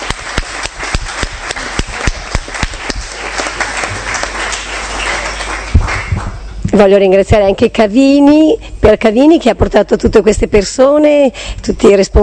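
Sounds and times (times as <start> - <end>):
audience applauding: 0.0 - 6.5
speech: 6.8 - 12.2.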